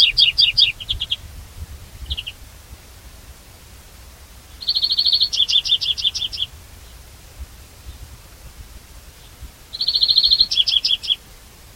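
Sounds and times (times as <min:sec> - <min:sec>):
European greenfinch Chloris chloris calling: 0:00.0 - 0:01.2, 0:02.0 - 0:02.4, 0:04.5 - 0:07.0, 0:09.2 - 0:11.3.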